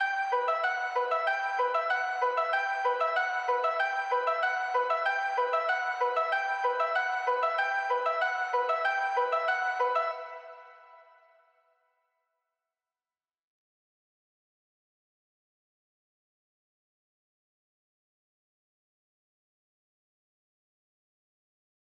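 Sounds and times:
hip hop keys melody loop in E minor at 95 BPM: 0.2 - 10.4.

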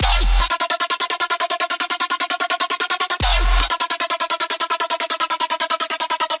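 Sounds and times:
hybrid trap drop synth loop in F minor: 0.0 - 0.9, 2.0 - 6.3.

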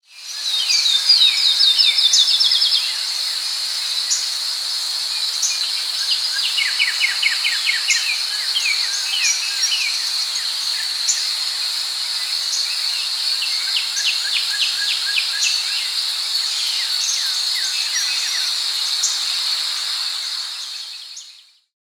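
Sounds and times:
nature ambience: 0.0 - 21.7.

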